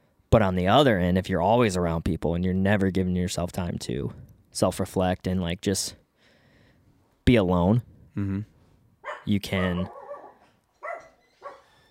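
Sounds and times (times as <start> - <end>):
speech: 0.3 - 6.0, 7.3 - 8.5, 9.2 - 10.0
dog barking in sharp yips: 9.0 - 11.7.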